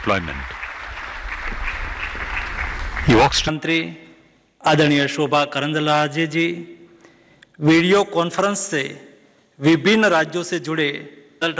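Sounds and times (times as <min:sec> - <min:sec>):
speech: 0:00.0 - 0:00.6, 0:03.0 - 0:04.0, 0:04.6 - 0:06.8, 0:07.6 - 0:11.5
audience applause at a government ministerial event in India: 0:00.0 - 0:03.5.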